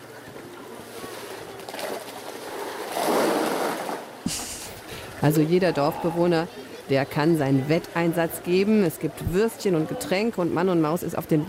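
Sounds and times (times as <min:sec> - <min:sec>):
rushing water of a river: 0:00.0 - 0:11.4
speech: 0:05.2 - 0:11.4.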